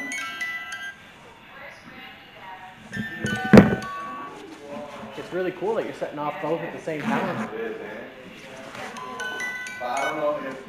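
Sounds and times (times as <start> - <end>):
toy with lights playing a tinny electronic jingle: 0.0 - 1.0, 2.9 - 4.4, 9.0 - 10.6
speech: 5.3 - 8.2.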